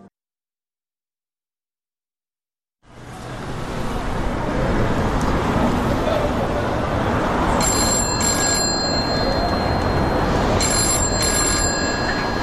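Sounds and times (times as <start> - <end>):
loud noise: 2.9 - 12.4
telephone ringing with shrill high trilling: 7.6 - 12.4.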